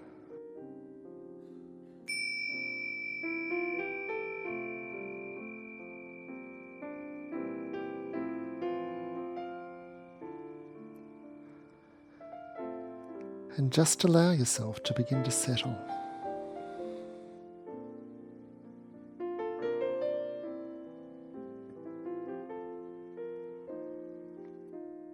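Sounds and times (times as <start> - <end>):
soft calm ambient music: 0.0 - 25.1
bright meditation chime ringing: 2.1 - 10.2, 14.3 - 17.1
speech: 13.6 - 16.0.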